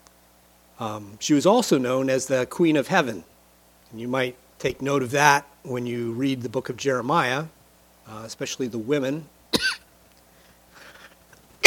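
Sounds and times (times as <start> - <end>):
speech: 0.8 - 3.3, 3.9 - 9.4
person coughing: 9.6 - 9.9.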